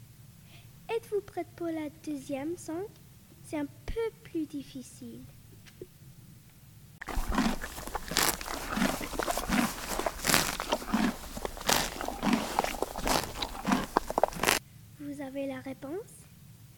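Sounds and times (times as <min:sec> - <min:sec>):
speech: 0:01.1 - 0:05.4
horse eating with crunching bites and grinding: 0:07.0 - 0:14.6.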